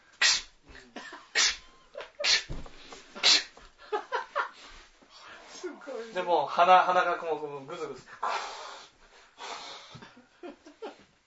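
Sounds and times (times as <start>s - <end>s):
person sensitive to dirt and dust sneezing: 0.2s - 0.6s, 1.4s - 3.6s
speech: 6.2s - 8.4s.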